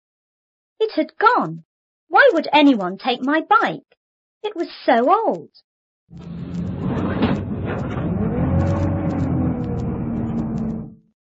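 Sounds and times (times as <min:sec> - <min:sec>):
speech: 0:00.8 - 0:06.5
bus engine rumbling as the bus drives away: 0:06.1 - 0:11.0.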